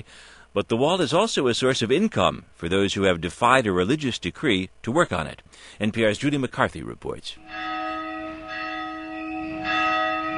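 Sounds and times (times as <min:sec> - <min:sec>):
speech: 0:00.0 - 0:07.7
church bells of a nursing home tolling along a narrow street near the Mount of Olives: 0:07.4 - 0:10.3.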